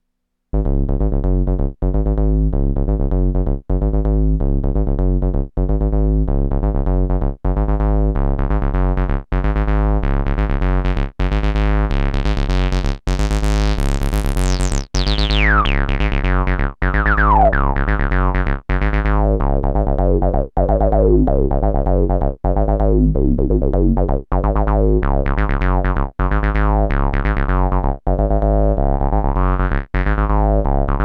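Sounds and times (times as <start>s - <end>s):
Volca Bass synthesizer bass: 0.6s - 31.0s.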